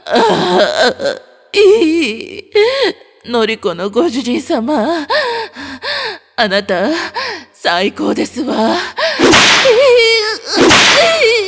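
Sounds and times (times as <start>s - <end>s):
speech: 0.1s - 5.2s, 6.4s - 9.0s
whip lashes striking blistered skin: 9.2s - 9.8s, 10.6s - 11.2s.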